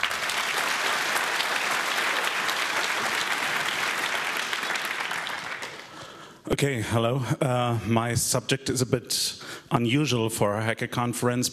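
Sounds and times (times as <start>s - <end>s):
audience applause: 0.0s - 6.2s
speech: 6.5s - 11.5s.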